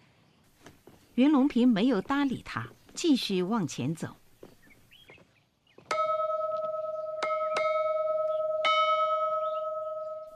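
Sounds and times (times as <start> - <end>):
speech: 1.2 - 4.2
school class bell ringing: 5.9 - 10.3.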